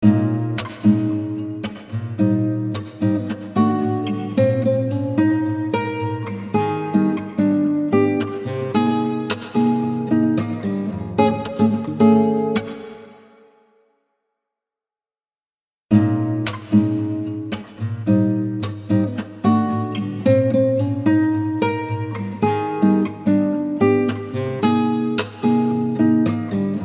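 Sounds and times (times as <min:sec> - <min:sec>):
acoustic guitar with wet effects variations: 0:00.0 - 0:14.0, 0:15.9 - 0:26.8.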